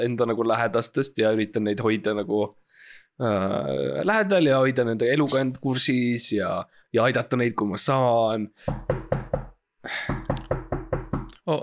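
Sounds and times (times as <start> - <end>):
speech: 0.0 - 10.2
knocking on a door: 8.7 - 11.4.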